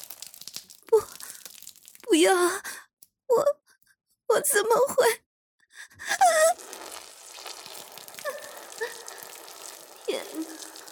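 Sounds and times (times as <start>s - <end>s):
urine splashing onto a hard floor on a wedding ceremony stage: 0.0s - 2.1s, 6.5s - 10.9s
speech: 2.2s - 2.7s, 3.3s - 3.6s, 4.3s - 5.2s.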